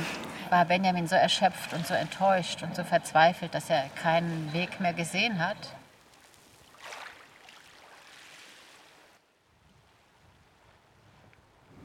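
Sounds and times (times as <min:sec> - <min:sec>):
speech: 0:00.5 - 0:05.8
strong wind gusting across an exposed clifftop: 0:09.6 - 0:11.8.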